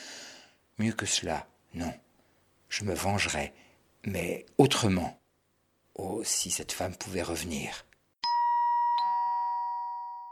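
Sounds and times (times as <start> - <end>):
speech: 0.8 - 2.0, 2.7 - 5.2, 6.0 - 7.9
doorbell ding-dong chime: 8.2 - 10.3.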